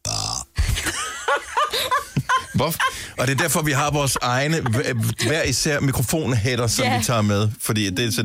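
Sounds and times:
person burping: 0.0s - 0.6s
laughter: 0.7s - 5.7s
speech: 2.6s - 8.2s.

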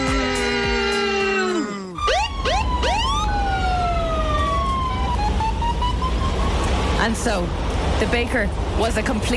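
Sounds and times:
road traffic rumble: 0.0s - 9.3s
police car siren: 2.0s - 7.0s
speech: 7.1s - 9.3s.

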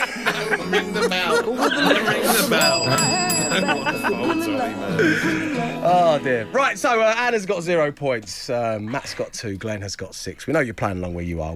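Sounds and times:
chuckling laughter from several people: 0.0s - 6.0s, 8.8s - 9.4s
lively chatter from several people: 0.2s - 11.5s
speech: 0.4s - 11.5s
bright bell ringing: 2.5s - 6.3s.

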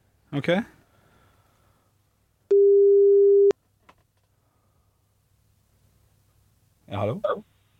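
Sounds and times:
speech: 0.3s - 0.8s, 7.0s - 7.5s
telephone ringing tone of an outgoing call: 2.5s - 3.5s.

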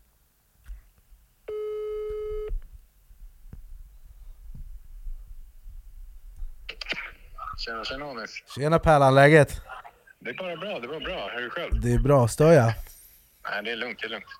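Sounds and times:
telephone ringback tone while placing a call: 1.5s - 2.5s
speech: 7.6s - 12.9s, 13.5s - 14.3s.

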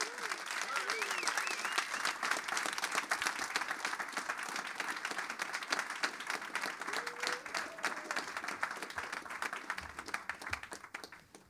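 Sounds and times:
faint cheering voices: 0.0s - 2.2s, 6.8s - 9.5s
audience applause welcoming guests: 0.0s - 11.4s.

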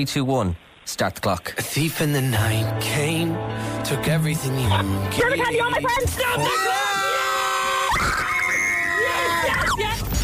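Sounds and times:
speech: 0.0s - 6.8s, 7.9s - 8.4s
woman screaming with joy after winning a song-guessing quiz game: 6.4s - 10.0s.

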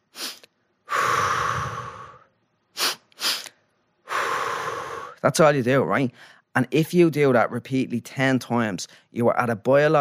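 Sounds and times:
person demonstrating a physiological sigh: 0.1s - 5.2s, 6.1s - 6.5s
speech: 5.2s - 9.9s.

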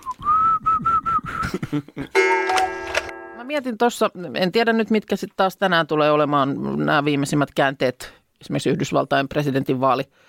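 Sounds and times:
person whistling in a speech-like rhythm: 0.0s - 1.6s
speech: 1.5s - 2.5s, 3.4s - 10.2s.

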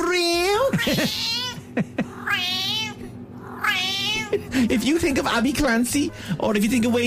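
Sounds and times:
speech: 0.8s - 2.8s, 3.8s - 7.0s
cat meowing loudly in long wavering cries: 0.9s - 1.6s, 2.2s - 4.3s.

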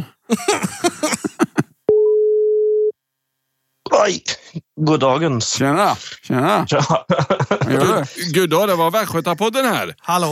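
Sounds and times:
speech: 0.0s - 1.4s, 4.0s - 10.3s
telephone dialing tones while placing a call: 1.9s - 2.9s.

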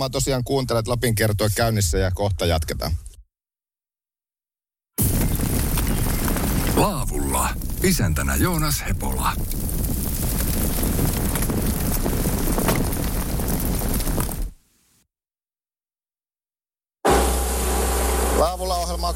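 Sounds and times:
speech: 0.0s - 3.1s, 7.8s - 9.9s
heavy wind rumble: 5.1s - 14.6s
boat's outboard motor droning: 17.1s - 19.1s.

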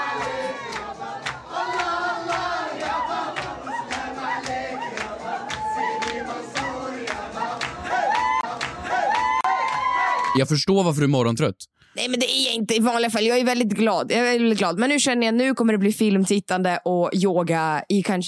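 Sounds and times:
crowd cheering and shouting at a Persian-Arab party: 0.0s - 10.5s
speech: 10.3s - 18.2s.

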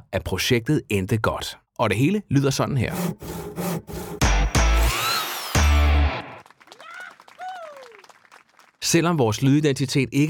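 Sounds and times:
speech: 0.1s - 3.9s, 8.9s - 10.2s
rhythmic saw strokes in a sound logo: 2.9s - 5.9s
power-tool noise: 2.9s - 6.3s.

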